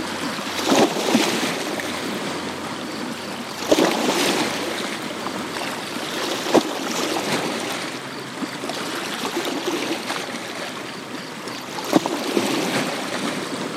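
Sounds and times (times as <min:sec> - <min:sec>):
waves of a river entering a lake lapping against a shore: 0:00.0 - 0:13.7.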